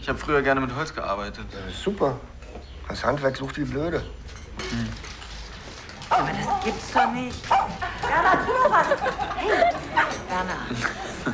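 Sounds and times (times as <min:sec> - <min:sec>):
speech: 0:00.0 - 0:05.1, 0:06.1 - 0:11.3
dog up for adoption barking and whimpering: 0:06.0 - 0:08.4
laughter: 0:07.5 - 0:11.3.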